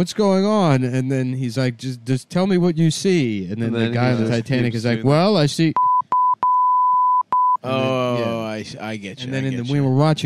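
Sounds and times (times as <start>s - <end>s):
speech: 0.0s - 5.9s, 7.6s - 10.2s
electronic beeps resembling Morse code: 5.8s - 7.6s.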